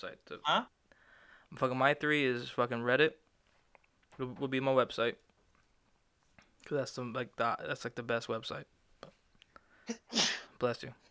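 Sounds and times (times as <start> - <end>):
speech: 0.0 - 0.8, 1.5 - 3.2, 4.2 - 5.2, 6.6 - 9.1, 9.9 - 11.0
single loud sneeze: 9.9 - 10.6.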